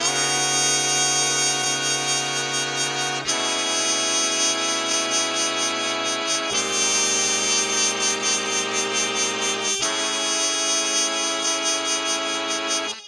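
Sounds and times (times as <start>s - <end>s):
elongated jazz horns loop at 148 bpm: 0.0s - 13.0s.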